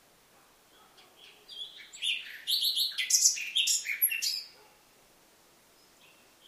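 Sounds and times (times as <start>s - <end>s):
Common nightingale (Luscinia megarhynchos) whistled notes and chattering trill: 0.7s - 4.9s, 5.8s - 6.4s.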